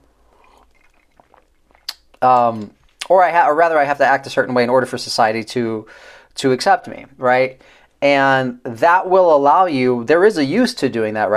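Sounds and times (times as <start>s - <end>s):
person sipping coffee: 0.0s - 3.0s
speech: 2.2s - 11.3s.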